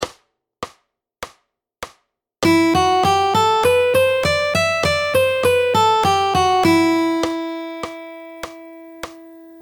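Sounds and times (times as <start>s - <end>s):
fingerstyle guitar scale: 2.4s - 9.6s.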